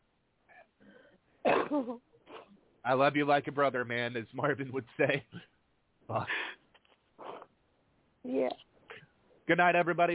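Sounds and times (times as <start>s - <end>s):
speech: 1.4s - 2.1s, 2.8s - 5.5s, 6.1s - 6.6s, 8.2s - 8.7s, 9.5s - 10.1s
person blowing nose: 7.2s - 7.5s.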